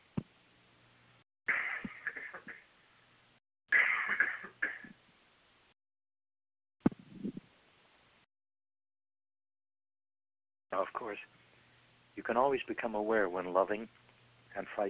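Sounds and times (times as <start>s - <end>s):
throaty coughs: 1.5s - 2.6s, 3.7s - 5.0s
speech: 10.8s - 11.4s, 12.2s - 14.0s, 14.6s - 14.8s.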